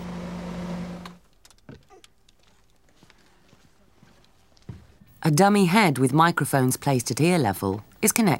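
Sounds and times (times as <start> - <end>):
car engine hum heard from inside the cabin: 0.0 - 1.2
speech: 5.2 - 8.3.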